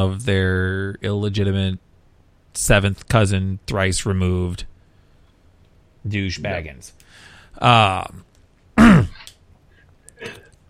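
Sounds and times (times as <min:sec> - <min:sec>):
speech: 0:00.0 - 0:01.8, 0:02.6 - 0:04.7, 0:06.0 - 0:07.0, 0:07.6 - 0:08.3
person clearing throat: 0:08.8 - 0:09.3, 0:10.2 - 0:10.5.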